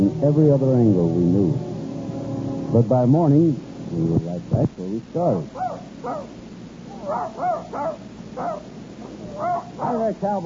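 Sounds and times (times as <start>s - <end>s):
speech: 0.1s - 1.7s, 2.7s - 6.4s, 7.1s - 10.4s
male dog barking: 5.5s - 6.3s, 6.9s - 10.1s.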